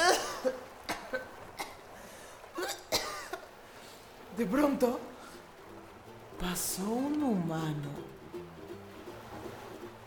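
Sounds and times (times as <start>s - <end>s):
person coughing after swallowing salt water: 0.0s - 1.8s, 2.6s - 3.4s
speech: 4.4s - 5.1s, 6.4s - 8.2s.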